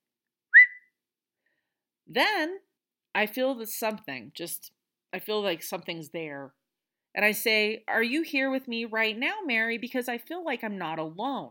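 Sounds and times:
short whistle: 0.5 - 0.9
speech: 2.1 - 11.4.

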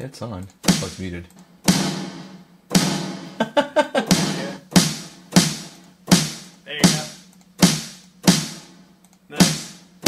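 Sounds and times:
speech: 0.0 - 2.0
loud snare drum hits drenched in heavy reverb: 0.7 - 1.1, 1.7 - 3.4, 4.1 - 8.8, 9.4 - 10.0
laughter: 3.4 - 4.6.

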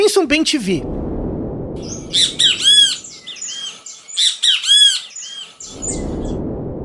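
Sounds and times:
speech: 0.1 - 1.2, 2.1 - 2.5
great kiskadee harsh call: 1.8 - 5.7.

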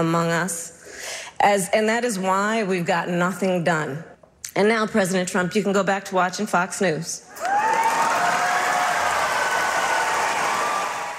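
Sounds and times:
speech: 0.0 - 0.8, 1.4 - 7.5
debate audience clapping: 7.4 - 11.1.

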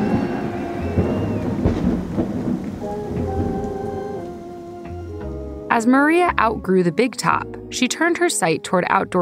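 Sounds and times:
rolling thunder: 0.0 - 4.7
heavy thunderstorm rain: 0.0 - 5.6
speech: 5.8 - 9.2.

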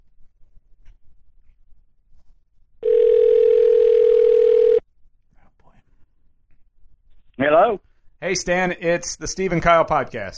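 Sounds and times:
telephone dial tone while placing a call: 2.8 - 4.8
speech: 7.7 - 10.3.

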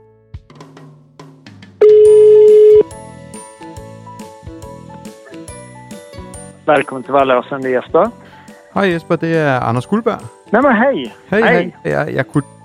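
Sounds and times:
phone ringing tone on outgoing call to Swedish ski resort: 1.8 - 2.8
light melodic music: 2.8 - 12.6
speech: 6.7 - 12.6.

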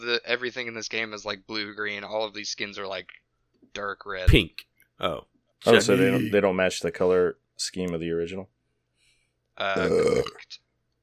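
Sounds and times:
speech: 0.2 - 8.6, 9.6 - 10.6
loud drawn-out burp: 9.7 - 10.5.

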